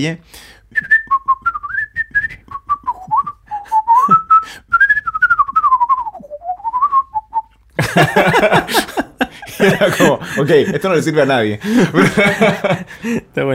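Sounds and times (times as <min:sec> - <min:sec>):
speech: 0:00.0 - 0:00.9, 0:08.0 - 0:09.0, 0:09.6 - 0:13.5
person whistling a quick lively tune: 0:00.7 - 0:07.5
laughter: 0:07.8 - 0:13.5.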